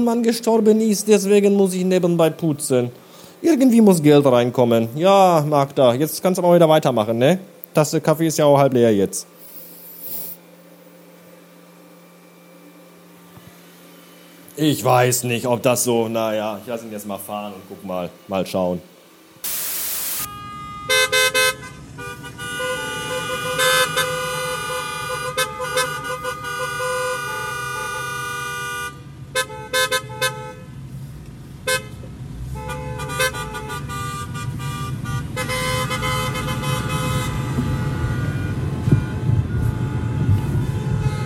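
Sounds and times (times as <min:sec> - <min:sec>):
speech: 0:00.0 - 0:09.4, 0:14.6 - 0:19.6
car horns of a wedding convoy honking: 0:20.1 - 0:30.8, 0:31.6 - 0:41.2
steady rumble of passing traffic: 0:20.4 - 0:41.2.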